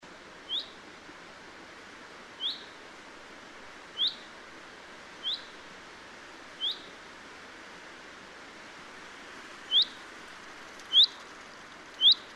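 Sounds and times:
low hiss: 0.0 - 12.3
common chaffinch Fringilla coelebs calling: 0.5 - 0.8, 2.4 - 2.8, 4.0 - 4.3, 5.2 - 5.6, 6.6 - 6.9, 9.7 - 10.0, 10.8 - 12.3.

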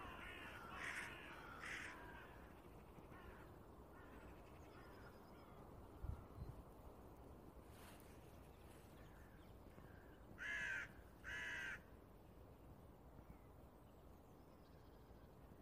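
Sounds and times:
carrion crow Corvus corone cawing: 0.0 - 5.6, 9.2 - 11.9
low background noise: 0.0 - 15.6.

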